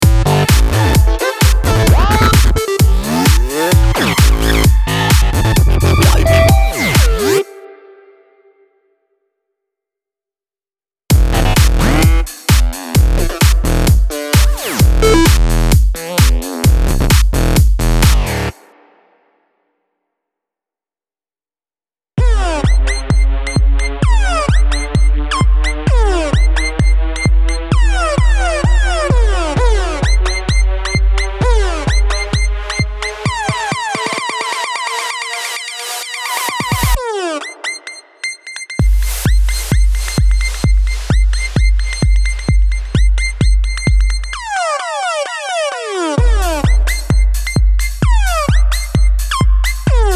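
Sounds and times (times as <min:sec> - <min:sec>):
electro music: 0:00.0 - 0:07.8, 0:11.1 - 0:18.6, 0:22.2 - 0:38.0, 0:38.6 - 0:50.1.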